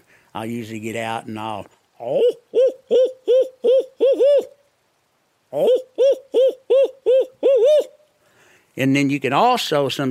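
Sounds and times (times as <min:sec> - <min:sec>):
speech: 0:00.3 - 0:03.8, 0:05.5 - 0:05.9, 0:08.8 - 0:10.0
imitated owl hoot locator call for turkeys: 0:01.9 - 0:08.1.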